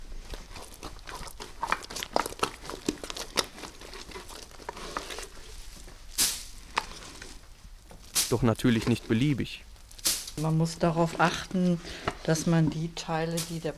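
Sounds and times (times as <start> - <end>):
wet peat mud spread over a plastic sheet on a treatment couch: 0.0 - 13.7
speech: 8.3 - 9.7, 10.4 - 13.7.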